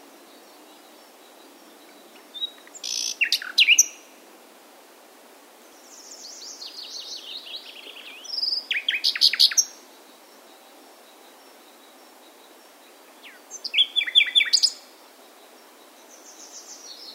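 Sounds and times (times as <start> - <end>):
common nightingale Luscinia megarhynchos singing: 0.2 - 4.1, 5.7 - 17.1.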